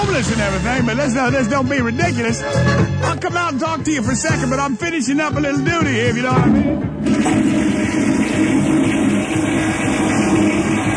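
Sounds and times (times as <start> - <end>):
speech: 0.0 - 9.5
generator droning: 6.3 - 10.9.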